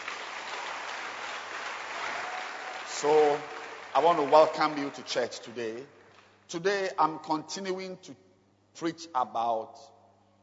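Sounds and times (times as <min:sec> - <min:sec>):
crowd of people clapping their hands: 0:00.0 - 0:05.4
speech: 0:03.0 - 0:08.2, 0:08.8 - 0:09.9.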